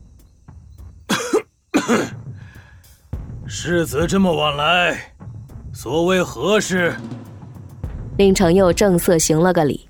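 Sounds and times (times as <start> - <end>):
man coughing at the door of a study: 1.1 - 2.2
speech: 1.9 - 2.2, 3.5 - 5.1, 5.8 - 7.2, 8.2 - 9.8.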